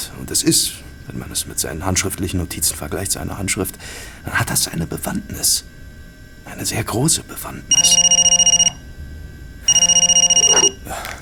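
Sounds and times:
speech: 0:00.2 - 0:05.8, 0:06.4 - 0:08.1
telephone ringing: 0:07.7 - 0:08.9, 0:09.6 - 0:10.8.

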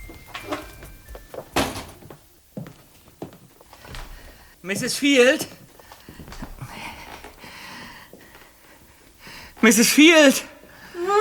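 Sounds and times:
ajar front door of a bungalow creaking open: 0:00.0 - 0:02.2
quiet shuffling movement: 0:00.0 - 0:09.8
speech: 0:04.6 - 0:05.6, 0:09.6 - 0:10.5.

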